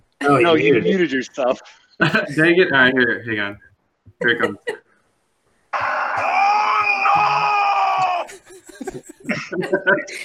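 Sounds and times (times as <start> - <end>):
speech: 0.3 - 4.8, 8.9 - 10.2
man's scream sound effect: 5.8 - 8.3
laughter: 7.3 - 10.2.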